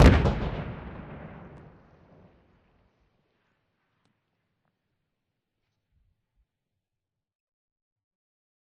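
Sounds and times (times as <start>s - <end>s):
distant nuclear explosion: 0.0s - 3.0s.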